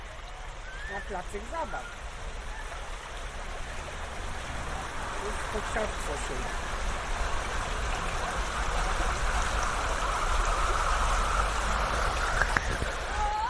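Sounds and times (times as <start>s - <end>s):
water flowing in a steady rush: 0.0s - 13.4s
speech: 0.9s - 2.1s, 5.2s - 6.6s.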